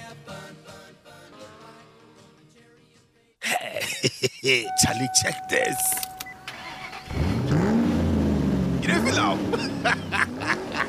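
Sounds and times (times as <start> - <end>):
laughter: 3.4 - 4.7, 9.0 - 10.8
speech: 4.0 - 6.0, 9.2 - 10.2
car engine cranking, starting and running: 4.7 - 10.8.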